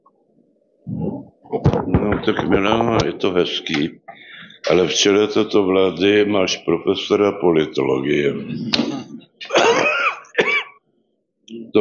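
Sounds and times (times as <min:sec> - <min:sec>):
speech: 0:01.6 - 0:04.0, 0:04.6 - 0:09.0
person giving rough throaty coughs: 0:08.8 - 0:10.8.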